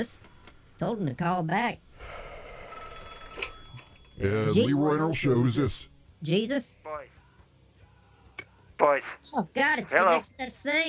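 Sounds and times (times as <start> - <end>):
speech: 0.0 - 0.2, 0.8 - 2.2, 4.2 - 7.2, 8.8 - 10.8
telephone bell ringing with a bright metallic trill: 2.0 - 5.6.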